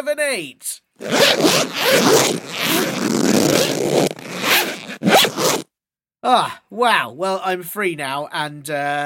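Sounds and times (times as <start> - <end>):
speech: 0.0 - 4.1, 6.2 - 9.0
zipper being unzipped: 1.0 - 5.6.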